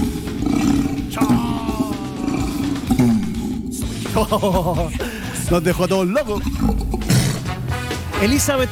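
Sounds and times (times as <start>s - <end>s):
orangutan call of deep roaring bellows: 0.0s - 4.1s, 6.2s - 7.7s
laughter: 3.8s - 5.7s
speech: 4.2s - 6.9s, 8.2s - 8.6s.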